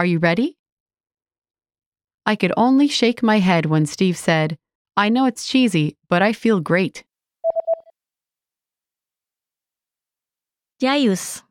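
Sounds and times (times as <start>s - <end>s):
speech: 0.0s - 0.6s, 2.2s - 7.1s, 10.8s - 11.4s
electronic telephone keypad dialing tones: 7.5s - 7.9s.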